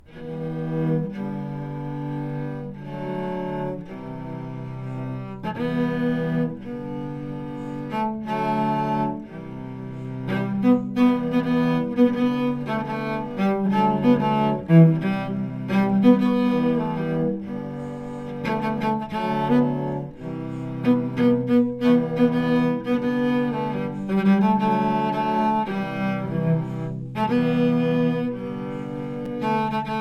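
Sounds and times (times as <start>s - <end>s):
cello ensemble playing: 0.0s - 29.9s.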